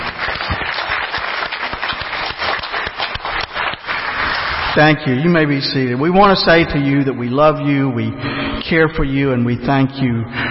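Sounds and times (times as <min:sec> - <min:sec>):
crowd applause: 0:00.0 - 0:04.8
speech: 0:04.8 - 0:10.4.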